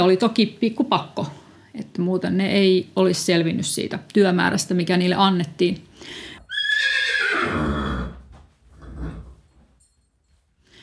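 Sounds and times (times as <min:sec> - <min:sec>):
speech: 0:00.0 - 0:06.2
horse neighing: 0:06.5 - 0:09.4
horse rattling snort: 0:06.8 - 0:09.5.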